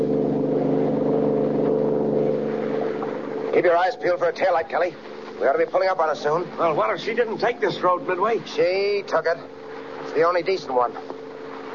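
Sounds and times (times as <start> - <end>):
high-powered car engine roaring at speed along a road: 0.0 - 11.7
speech: 3.6 - 11.2.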